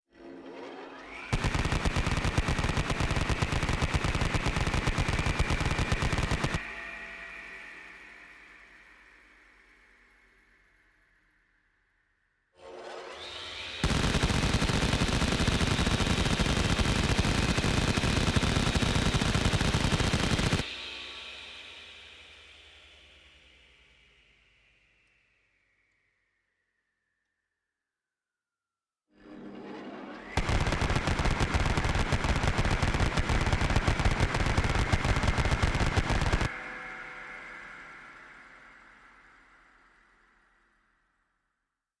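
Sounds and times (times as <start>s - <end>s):
Vulcan machine gun firing a series: 1.3s - 6.6s, 13.8s - 20.7s, 30.4s - 36.5s.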